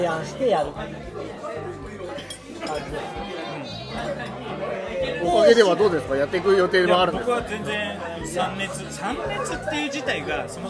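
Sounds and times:
busy izakaya crowd murmur of overlapping conversation: 0.0 - 10.6
speech: 0.0 - 10.6
dishes and glasses clinking in an izakaya: 2.1 - 3.4.

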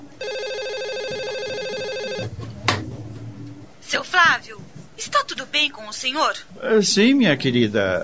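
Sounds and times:
telephone ringing with an electronic trill: 0.2 - 2.4
speech: 3.9 - 8.0.

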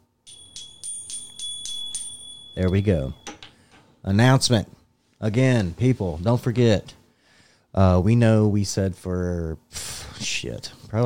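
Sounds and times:
small bell dinging: 0.2 - 3.8
speech: 2.6 - 3.3, 4.0 - 7.0, 7.7 - 11.0.

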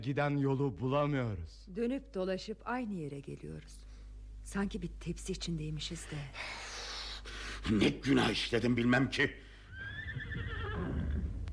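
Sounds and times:
speech: 0.0 - 6.7, 7.6 - 9.4
horse neighing: 9.7 - 11.5
faint low rumble of movement: 10.8 - 11.5.

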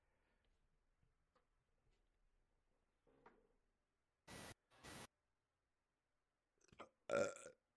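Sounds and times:
static-like hiss: 4.3 - 5.1
short low burp and throaty burp: 6.7 - 7.6.

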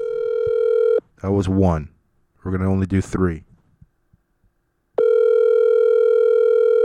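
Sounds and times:
telephone dial tone while placing a call: 0.0 - 1.0, 5.0 - 6.8
speech: 1.2 - 3.5.

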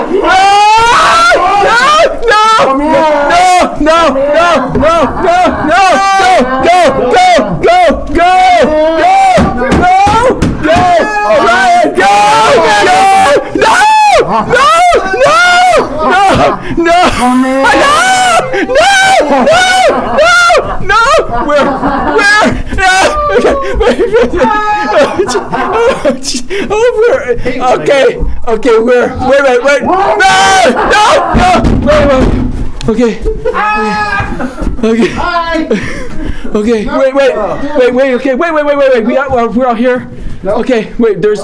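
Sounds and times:
crowd screaming and yelling: 0.0 - 25.3
laughter: 0.0 - 28.2, 29.2 - 32.2, 32.9 - 39.6
speech: 16.4 - 17.9, 18.7 - 41.4.

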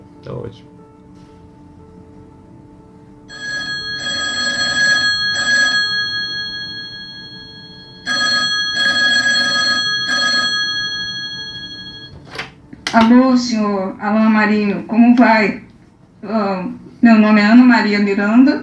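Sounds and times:
speech: 0.2 - 0.8, 13.0 - 15.6, 16.2 - 18.6
telephone ringing: 3.3 - 12.2.

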